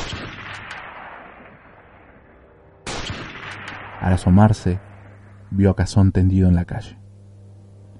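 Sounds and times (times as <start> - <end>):
gunshots with long rumbling echo: 0.0 - 5.4
speech: 4.0 - 4.9, 5.5 - 7.0.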